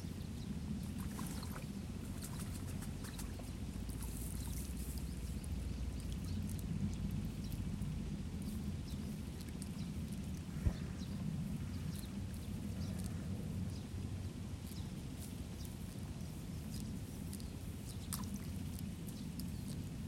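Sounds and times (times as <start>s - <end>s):
sparrows chirping: 0.0s - 6.6s, 8.4s - 14.0s, 14.6s - 20.0s
deep constant rumble: 0.0s - 20.0s
small splashes in a rice paddy: 1.0s - 5.0s, 17.9s - 18.8s
water sloshing in a rice paddy: 1.0s - 6.4s.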